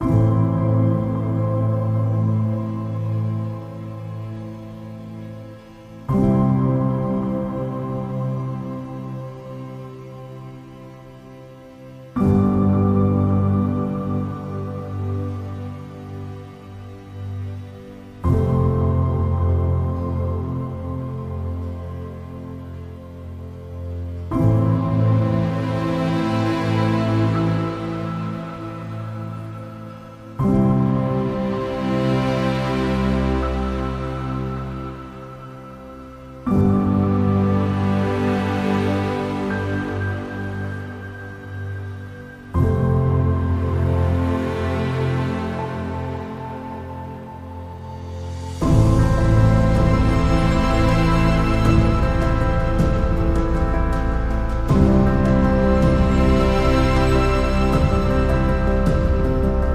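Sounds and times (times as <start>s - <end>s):
cinematic documentary piano music: 0.0s - 59.7s.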